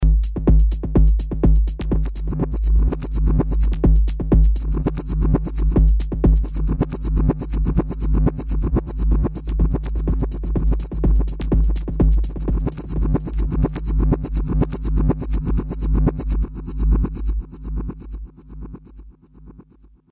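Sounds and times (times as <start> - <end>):
reversed loop through a delay unit: 0.1 - 19.8.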